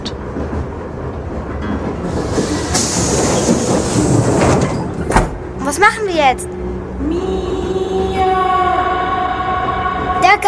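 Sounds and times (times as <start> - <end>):
moving train rolling rumble and hiss: 0.0 - 10.4
train carriage door sliding and banging shut: 2.3 - 5.4
speech: 5.8 - 7.3.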